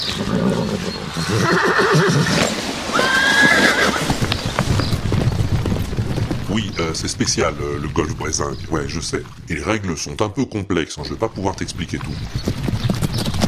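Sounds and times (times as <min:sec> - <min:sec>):
horse neighing: 0:00.0 - 0:04.2
hooves clopping: 0:00.0 - 0:10.3, 0:11.0 - 0:13.4
speech: 0:00.4 - 0:02.6, 0:06.8 - 0:12.6.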